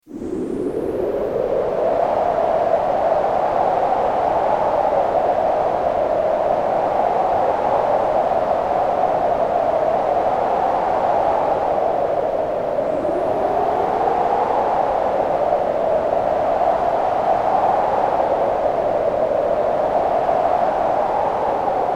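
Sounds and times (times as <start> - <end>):
desert wind sound effect: 0.0 - 21.9.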